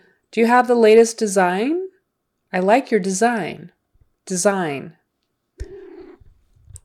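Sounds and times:
speech: 0:00.3 - 0:01.8, 0:02.5 - 0:05.0
cat purring: 0:05.6 - 0:06.8.

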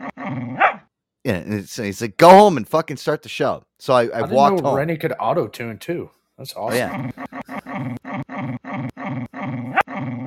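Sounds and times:
dog barking and growling in loud throaty bursts: 0:00.0 - 0:00.9, 0:06.7 - 0:10.2
speech: 0:01.2 - 0:07.2, 0:07.8 - 0:08.0.

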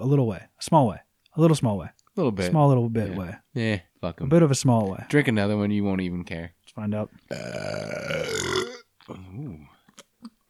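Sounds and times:
speech: 0:00.0 - 0:09.7
person burping: 0:07.3 - 0:09.6.

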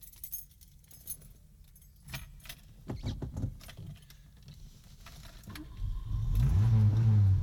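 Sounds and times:
keys jingling and clattering: 0:00.0 - 0:02.8
Porsche sports car engine starting and revving: 0:05.8 - 0:07.4.

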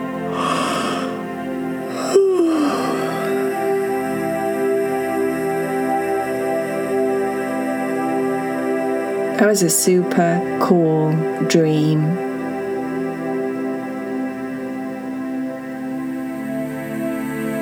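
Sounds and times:
soft steady musical drone: 0:00.0 - 0:17.6
girl yawning while rolling over in bed: 0:01.9 - 0:03.4
speech: 0:09.4 - 0:12.2.

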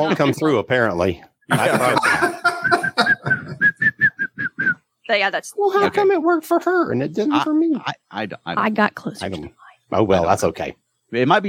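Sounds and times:
speech: 0:00.0 - 0:02.3, 0:05.1 - 0:11.4
breathy laugh-like sounds: 0:01.5 - 0:03.8
person whistling a short tune: 0:02.6 - 0:04.8.

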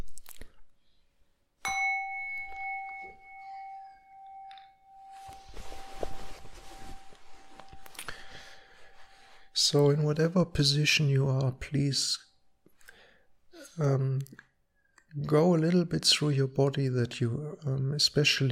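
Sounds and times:
meditation bell being struck: 0:01.6 - 0:09.6
soft rustling and shuffling: 0:04.6 - 0:10.4
speech: 0:09.7 - 0:12.3, 0:13.8 - 0:14.5, 0:15.1 - 0:18.4.

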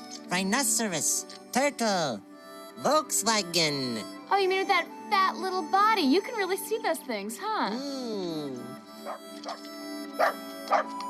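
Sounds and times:
speech: 0:00.3 - 0:11.0
mutt barking: 0:09.0 - 0:09.6, 0:10.2 - 0:11.0.

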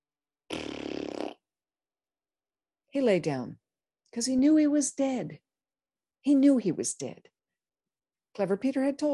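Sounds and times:
mouth raspberry imitating a fart: 0:00.5 - 0:01.4
speech: 0:02.9 - 0:05.4, 0:06.2 - 0:07.3, 0:08.4 - 0:09.1.

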